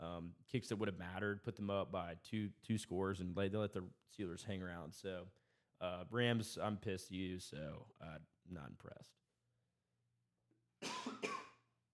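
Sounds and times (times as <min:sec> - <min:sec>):
speech: 0:00.2 - 0:09.2
loud harsh cough: 0:10.8 - 0:11.7.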